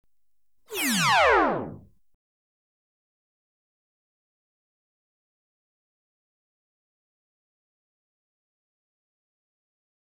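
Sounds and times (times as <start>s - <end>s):
electronically generated high power phaser weapon shot: 0.7s - 1.9s.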